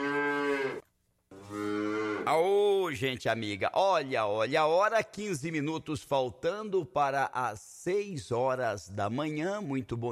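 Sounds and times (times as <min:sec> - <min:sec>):
cow mooing with deep drawn-out lows: 0:00.0 - 0:02.3
speech: 0:02.3 - 0:10.1.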